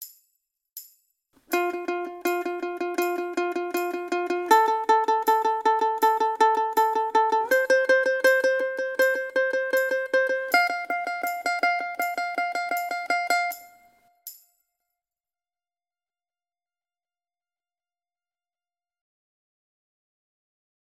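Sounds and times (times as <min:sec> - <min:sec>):
ukulele tremolo picking: 0:01.5 - 0:14.0.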